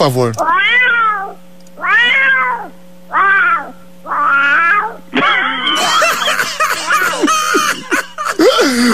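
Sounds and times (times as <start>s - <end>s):
speech: 0.0s - 0.8s
cat yowling tunefully: 0.4s - 5.6s
laughter: 5.2s - 8.9s.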